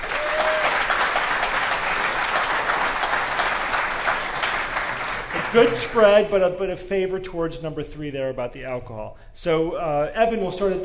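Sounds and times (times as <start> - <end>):
sizable audience applauding: 0.0 - 6.2
speech: 5.5 - 10.8.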